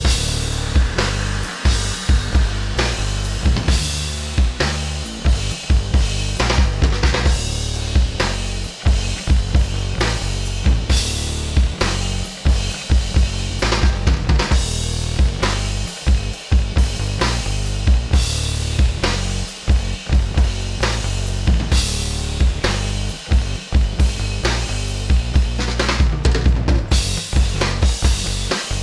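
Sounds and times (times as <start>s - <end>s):
kick drum: 0.0s - 1.0s, 3.4s - 4.6s, 5.3s - 8.2s, 8.9s - 9.9s, 10.6s - 11.8s, 12.4s - 15.4s, 16.0s - 17.0s, 17.8s - 19.0s, 19.7s - 20.7s, 21.5s - 22.6s, 23.3s - 24.3s, 25.1s - 28.3s
bass ducked by kick drum: 0.0s - 28.8s.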